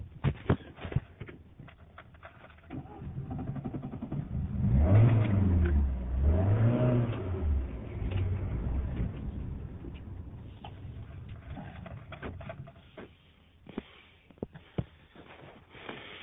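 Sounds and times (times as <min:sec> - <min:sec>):
clicks and rattling: 0:00.2 - 0:04.2, 0:09.9 - 0:15.5
bus engine revving: 0:02.8 - 0:11.6.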